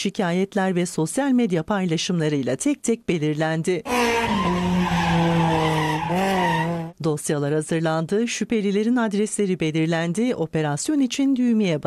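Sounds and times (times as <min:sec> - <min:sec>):
speech: 0:00.0 - 0:04.6, 0:07.0 - 0:11.8
car tires squealing while drifting on a road open to traffic: 0:03.9 - 0:07.0.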